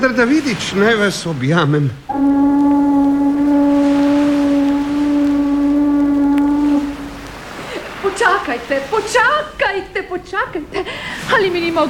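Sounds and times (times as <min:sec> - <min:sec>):
speech: 0:00.0 - 0:02.4, 0:08.2 - 0:11.8
ship's horn blowing before departure: 0:02.1 - 0:09.0.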